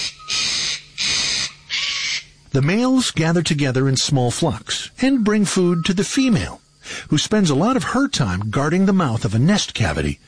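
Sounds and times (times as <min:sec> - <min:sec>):
Eclectus parrot giving loud raspy screeches: 0:00.0 - 0:02.4
speech: 0:02.6 - 0:10.2.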